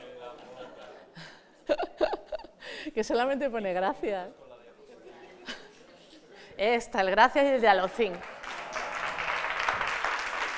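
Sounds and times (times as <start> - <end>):
speech: 2.9 - 4.4, 6.6 - 8.3
audience applauding after a conference talk: 8.1 - 10.5.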